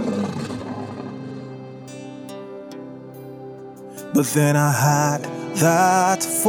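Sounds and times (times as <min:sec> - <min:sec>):
lion roaring: 0:00.0 - 0:01.4
speech: 0:04.1 - 0:06.4.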